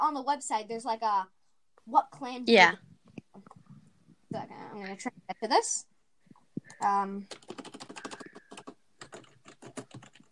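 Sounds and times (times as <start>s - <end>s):
speech: 0.0s - 2.9s, 4.3s - 5.9s, 6.8s - 7.6s
typing on a computer keyboard: 6.7s - 10.3s.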